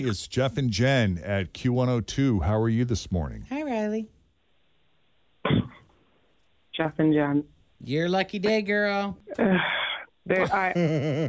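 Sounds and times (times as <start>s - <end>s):
speech: 0.0s - 4.1s, 6.8s - 11.2s
woman gasping in surprise: 9.3s - 10.1s
laughter: 10.3s - 11.2s.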